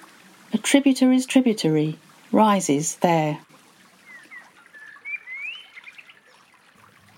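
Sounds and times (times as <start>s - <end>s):
speech: 0.5s - 3.5s
thin whistled woodland bird notes: 4.0s - 6.5s.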